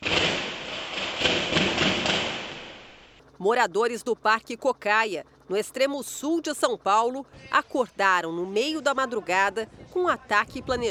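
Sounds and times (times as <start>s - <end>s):
constant hiss: 0.0s - 3.2s
rifle gunshots echoing through streets: 0.0s - 3.2s
speech: 3.4s - 10.8s.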